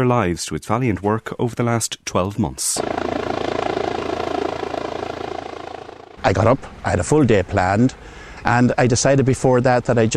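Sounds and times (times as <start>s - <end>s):
speech: 0.0s - 3.3s, 6.2s - 10.1s
rescue helicopter flying overhead: 2.8s - 6.5s.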